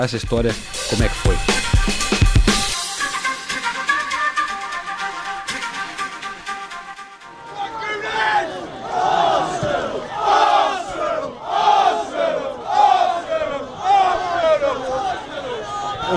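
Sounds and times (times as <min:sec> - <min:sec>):
speech: 0:00.0 - 0:01.7
busy noisy street ambience: 0:00.0 - 0:16.1
large crowd of football supporters chanting rhythmically at a stadium: 0:07.2 - 0:16.1.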